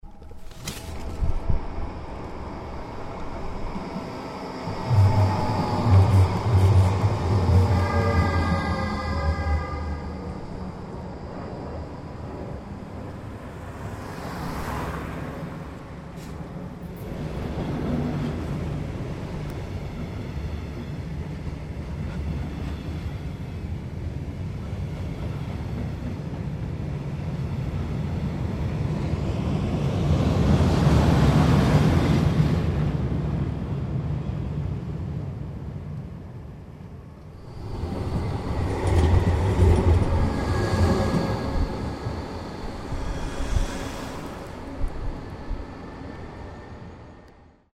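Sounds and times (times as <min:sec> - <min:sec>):
train station ambience: 0:00.0 - 0:47.7.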